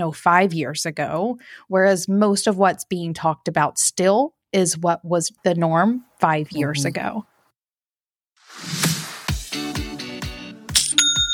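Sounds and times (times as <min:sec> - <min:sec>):
speech: 0:00.0 - 0:07.3
online store new sale notification chime: 0:10.9 - 0:11.3.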